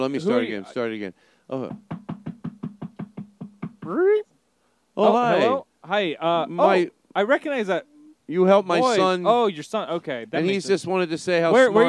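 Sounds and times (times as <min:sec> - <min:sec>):
speech: 0:00.0 - 0:02.0, 0:03.9 - 0:04.3, 0:05.0 - 0:11.8
visitor knocking on a door: 0:01.6 - 0:03.9.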